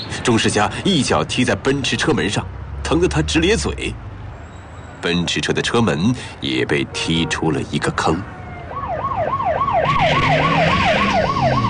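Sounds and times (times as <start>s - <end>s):
road traffic noise: 0.0s - 11.6s
speech: 0.2s - 4.1s, 5.0s - 8.4s
traffic police motorcycle siren wailing in two tones: 8.2s - 11.6s.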